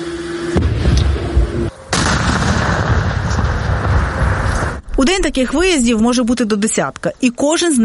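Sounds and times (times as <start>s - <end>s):
controlled demolition explosion of drone debris: 0.6s - 5.0s
crackling debris noise: 2.0s - 5.9s
speech: 5.1s - 7.8s.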